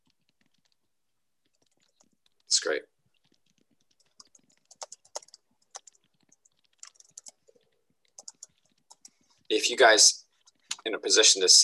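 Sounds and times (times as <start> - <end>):
typing on a computer keyboard: 1.4 - 2.5, 3.2 - 9.2
speech: 2.5 - 2.9, 9.5 - 10.2, 10.8 - 11.6.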